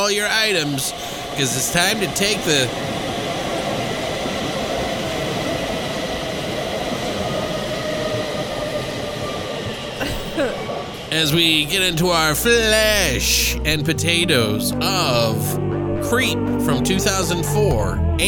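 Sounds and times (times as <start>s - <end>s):
speech: 0.0s - 3.0s, 11.2s - 18.2s
subway train rumbling along the tracks: 0.0s - 18.2s.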